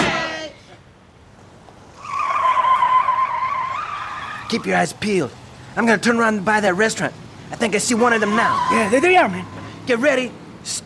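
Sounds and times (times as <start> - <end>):
car tires squealing as the car drives off: 1.9 - 4.8, 7.8 - 9.9
speech: 4.5 - 10.8.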